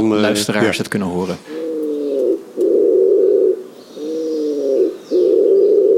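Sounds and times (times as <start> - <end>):
speech: 0.0 - 1.6
male bird's nest-grunting call at a nest site: 1.4 - 5.9.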